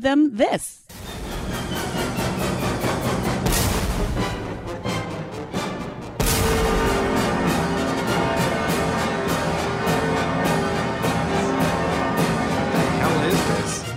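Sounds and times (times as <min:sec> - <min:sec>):
speech: 0:00.0 - 0:00.8
full orchestra playing loudly: 0:00.9 - 0:13.9
heavy booming cannon blasts: 0:06.2 - 0:08.4.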